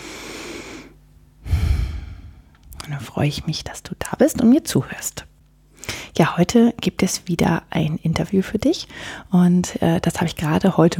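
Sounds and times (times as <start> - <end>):
person breathing in deeply and exhaling loudly: 0.0 - 2.6
speech: 2.9 - 5.3, 6.1 - 10.9.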